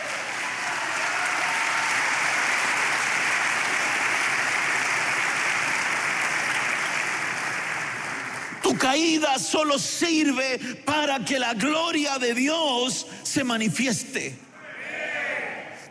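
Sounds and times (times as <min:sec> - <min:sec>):
large audience applauding: 0:00.0 - 0:09.2
speech: 0:08.8 - 0:14.5.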